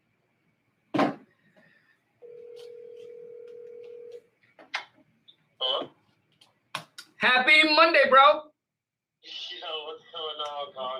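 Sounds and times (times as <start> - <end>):
telephone ringback tone of a dialed call: 2.2 - 4.2
speech: 7.2 - 8.5.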